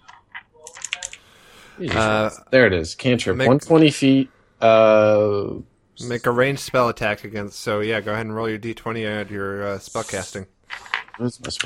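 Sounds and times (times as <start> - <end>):
computer keyboard typing: 0.0 - 1.2
speech: 1.8 - 11.6.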